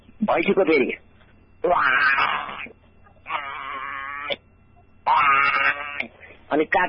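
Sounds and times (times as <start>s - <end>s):
speech: 0.2s - 1.0s, 1.6s - 2.4s, 6.5s - 6.8s
goat bleating: 1.6s - 4.4s, 5.0s - 6.2s.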